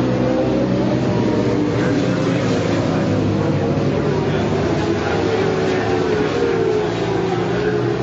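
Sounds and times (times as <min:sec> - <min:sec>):
AMA sport class superbike motorcycles rolling past on a race track: 0:00.0 - 0:08.0.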